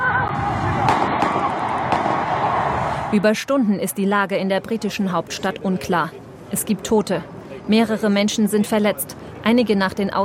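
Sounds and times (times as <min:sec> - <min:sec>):
agitated panicked voices: 0:00.0 - 0:05.4
street noise: 0:00.0 - 0:10.2
sharp gunshots in front of the Parliament building in London during a terror attack: 0:00.3 - 0:02.9
speech: 0:03.1 - 0:10.2.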